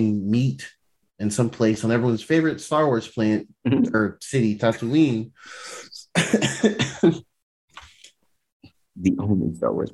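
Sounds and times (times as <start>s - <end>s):
speech: 0.0s - 7.3s, 9.0s - 9.9s
person coughing harshly: 6.2s - 7.2s.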